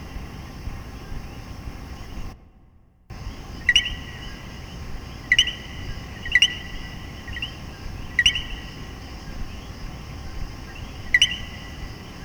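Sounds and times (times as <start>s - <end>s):
steady background hiss: 0.0s - 12.2s
common coquí frog two-note calls in Puerto Rico: 3.2s - 12.2s.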